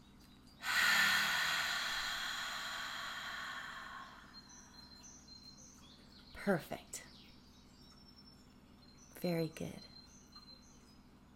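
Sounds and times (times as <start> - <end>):
long slow breath drawn in through the nose: 0.6 - 4.6
speech: 6.4 - 7.1, 9.2 - 10.0.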